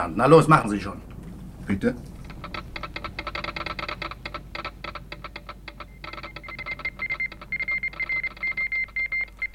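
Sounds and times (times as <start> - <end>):
speech: 0.0 - 1.1, 1.7 - 2.1
rapid mechanical clicking: 1.1 - 9.5
Morse code radio transmission beeps calling a coast station: 5.7 - 9.5.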